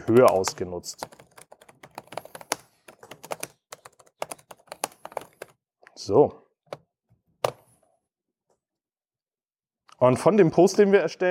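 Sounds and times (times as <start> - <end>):
typing on a computer keyboard: 0.0 - 5.6
speech: 0.1 - 1.3, 6.0 - 6.4, 10.0 - 11.2.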